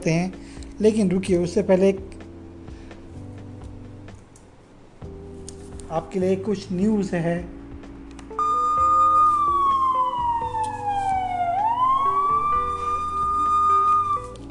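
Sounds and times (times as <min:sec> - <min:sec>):
speech: 0:00.0 - 0:02.1, 0:05.9 - 0:07.6
low rumbling background: 0:00.0 - 0:14.4
police car siren wailing: 0:08.3 - 0:14.4.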